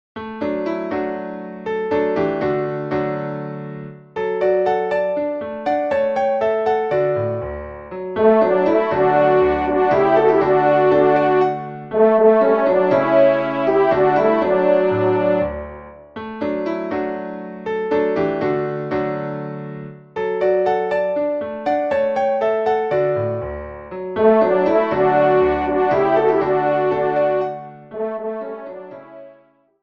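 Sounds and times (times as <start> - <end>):
piano: 0.2 - 29.7
trumpet: 8.2 - 15.7, 24.2 - 29.5.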